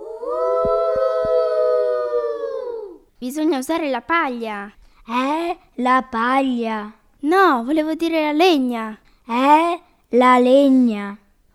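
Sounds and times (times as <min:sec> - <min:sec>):
wolf howling: 0:00.0 - 0:03.1
speech: 0:03.3 - 0:11.2.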